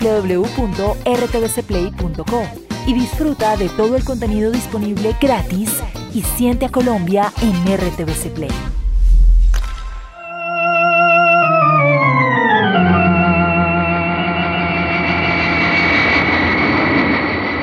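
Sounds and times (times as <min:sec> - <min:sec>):
speech: 0:00.0 - 0:08.7
jet airliner engines droning in flight: 0:10.4 - 0:17.6.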